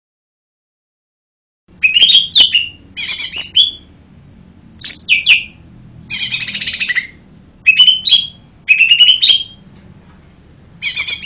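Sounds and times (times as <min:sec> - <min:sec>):
Lesser green leafbird song of slurred whistles and rasping buzzy notes: 0:01.8 - 0:03.9, 0:04.8 - 0:09.6, 0:10.8 - 0:11.2
speech: 0:04.8 - 0:05.6.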